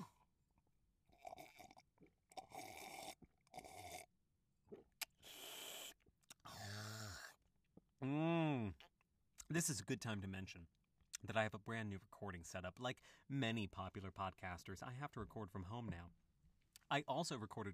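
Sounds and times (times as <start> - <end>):
slurping sips of New Zealand Sauvignon Blanc wine: 1.1 - 4.1, 5.0 - 7.4
speech: 8.0 - 8.3, 9.5 - 16.2, 16.9 - 17.7.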